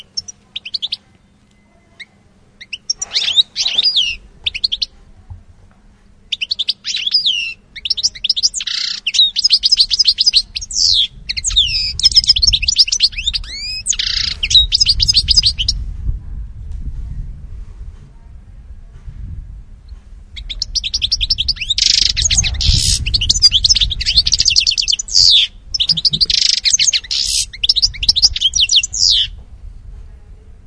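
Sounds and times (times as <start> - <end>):
European goldfinch singing: 0.0 - 5.0, 6.3 - 15.8, 20.3 - 29.4
low rumble: 0.0 - 30.6.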